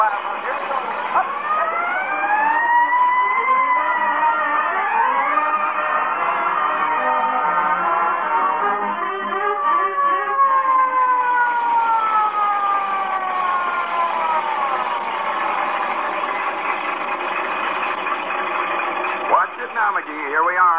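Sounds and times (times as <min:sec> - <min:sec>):
fire truck siren wailing: 0:00.0 - 0:20.7.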